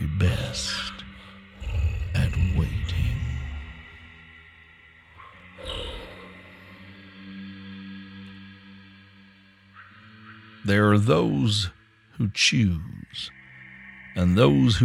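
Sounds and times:
deep rumbling monster roar: 0:00.0 - 0:04.2, 0:05.5 - 0:06.4
low droning ambience: 0:00.0 - 0:14.8
speech: 0:00.3 - 0:00.8, 0:10.6 - 0:13.4, 0:14.2 - 0:14.8.

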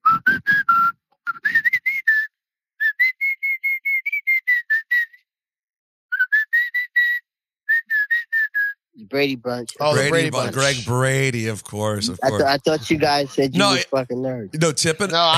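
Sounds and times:
person whistling a TV theme tune: 0:00.0 - 0:05.3, 0:06.1 - 0:08.8
speech: 0:09.1 - 0:15.3
laughter: 0:09.7 - 0:15.3.

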